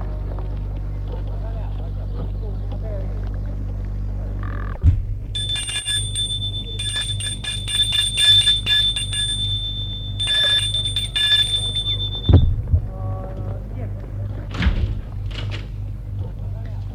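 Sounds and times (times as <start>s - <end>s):
steady low hum: 0.0s - 16.9s
shrill electric doorbell ringing at a small country house door: 5.4s - 12.5s.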